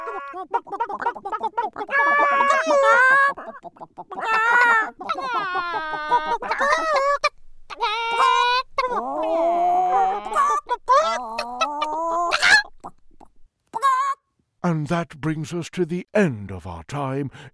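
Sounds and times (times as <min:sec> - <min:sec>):
voiceover artists imitating chicken crowing: 0:00.0 - 0:12.7, 0:13.8 - 0:14.2
speech: 0:00.2 - 0:06.4, 0:14.8 - 0:17.5.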